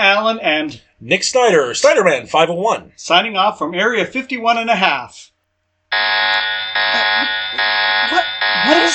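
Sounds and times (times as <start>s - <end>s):
speech: 0.0s - 5.3s, 5.9s - 8.9s
loud harsh buzzing alarm blaring: 5.9s - 8.9s.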